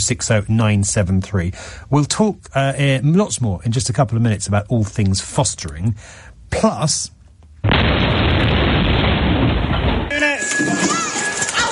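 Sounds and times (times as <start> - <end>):
speech: 0.0 - 8.6, 10.5 - 11.0
loud crashing of protesters breaking into a building: 7.6 - 11.6.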